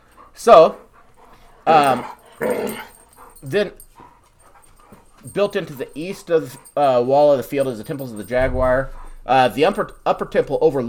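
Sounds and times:
speech: 0:00.4 - 0:00.8, 0:01.6 - 0:03.8, 0:05.2 - 0:10.8
dogs growling with a harsh rumbling snarl: 0:00.8 - 0:06.9.

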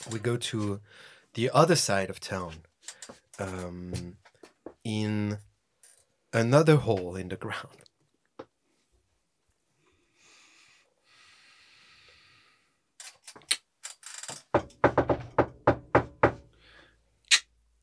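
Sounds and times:
speech: 0:00.0 - 0:05.5, 0:06.3 - 0:07.9
knocking on a door: 0:14.5 - 0:16.5.

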